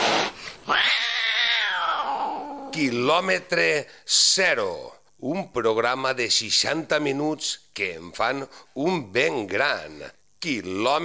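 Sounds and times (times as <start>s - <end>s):
cat hissing: 0.0s - 2.8s
cat yowling angrily: 0.7s - 2.8s
speech: 2.8s - 11.0s.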